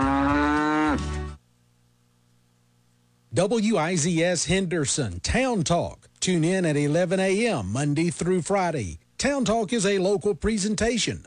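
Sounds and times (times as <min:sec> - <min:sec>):
cow mooing with a long low bellow: 0:00.0 - 0:01.2
speech: 0:03.4 - 0:11.2.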